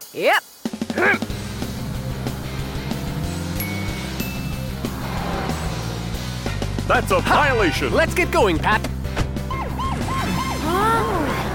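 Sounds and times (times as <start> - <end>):
speech: 0.1 - 1.2, 6.9 - 8.9
steady engine rumble: 1.2 - 9.9
police car siren wailing: 9.5 - 11.5.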